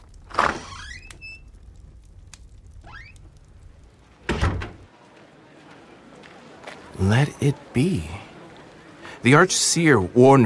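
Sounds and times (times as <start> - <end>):
front door creaking open: 0.2 - 1.7, 2.8 - 3.4, 4.2 - 4.9
front door shutting with a thud: 4.2 - 4.9
speech: 7.0 - 8.2, 9.2 - 10.4.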